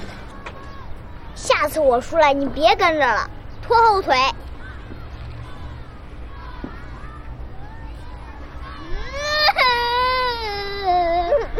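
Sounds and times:
speech: 1.6 - 4.4
child crying: 8.6 - 11.5.

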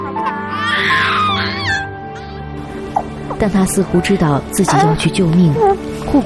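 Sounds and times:
four-month-old baby crying: 0.0 - 2.4, 4.5 - 5.9
speech: 3.4 - 6.2.

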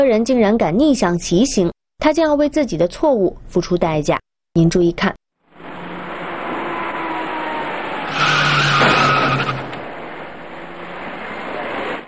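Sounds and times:
speech: 0.0 - 5.2
steady road noise: 5.4 - 12.0
small passenger car tires screeching while braking on a wet road: 5.5 - 12.0.

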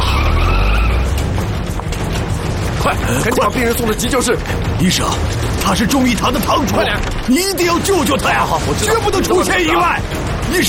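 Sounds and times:
car tires skidding and squealing: 0.0 - 1.6
car engine roaring as a car speeds off in a getaway: 0.0 - 5.6
speech: 3.1 - 10.6.

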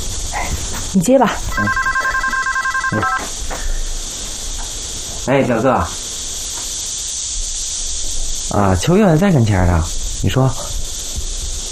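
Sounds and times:
speech: 0.9 - 1.9, 2.9 - 3.3, 5.3 - 6.1, 8.5 - 10.7
phone ringing with bright electronic ringtone: 1.5 - 3.3.

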